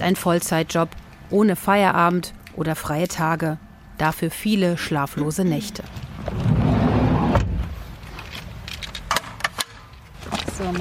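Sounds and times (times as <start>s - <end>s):
speech: 0.0s - 6.5s
low vehicle rumble: 4.8s - 10.8s.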